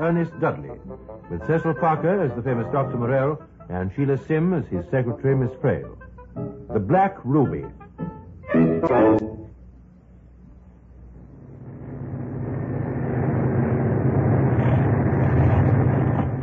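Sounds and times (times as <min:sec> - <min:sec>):
speech: 0:00.0 - 0:07.8, 0:08.5 - 0:09.2
faltering aircraft engine droning: 0:00.0 - 0:09.8, 0:10.5 - 0:16.4.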